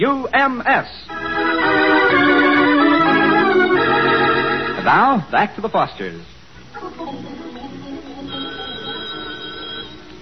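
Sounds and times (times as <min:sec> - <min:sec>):
speech: 0:00.0 - 0:01.5, 0:02.1 - 0:02.7, 0:04.8 - 0:06.4
music on old radio: 0:01.1 - 0:05.3, 0:06.7 - 0:10.1
telephone bell ringing with metallic trill on old radio: 0:08.3 - 0:10.0.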